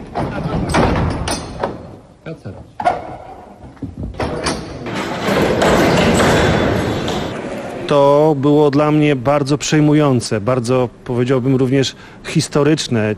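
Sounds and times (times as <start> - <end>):
loud thud of heavy church gates slamming shut: 0.0 - 2.0, 4.0 - 7.3
speech: 2.3 - 2.8, 7.9 - 13.1
heavy church gates scraping and sliding shut during the Easter Triduum: 4.2 - 7.4.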